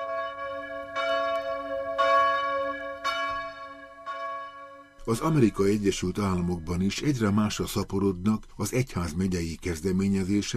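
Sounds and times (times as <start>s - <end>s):
church bells in Chicago USA calling to prayer: 0.0s - 6.6s
speech: 5.0s - 10.5s.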